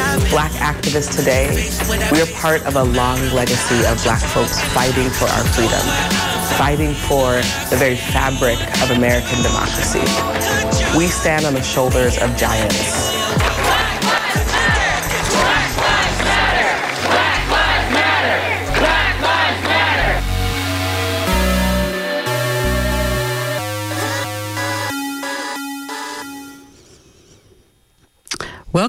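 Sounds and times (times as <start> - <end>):
sustained horn-like chords: 0.0 - 26.8
speech: 0.3 - 13.2
loud crowd shouting and yelling: 3.3 - 7.7, 9.6 - 20.4.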